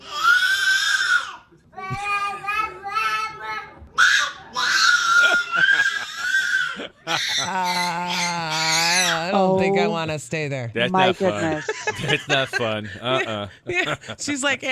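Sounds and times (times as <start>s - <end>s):
baby screaming for fun: 0.0s - 1.5s, 2.8s - 9.3s
laughter: 4.9s - 8.1s, 11.0s - 14.5s
speech: 9.7s - 14.6s.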